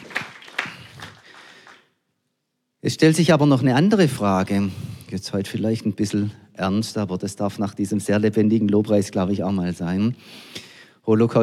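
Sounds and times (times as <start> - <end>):
audience applause: 0.0 - 1.9
sharp claps: 0.0 - 1.9
speech: 2.8 - 11.4.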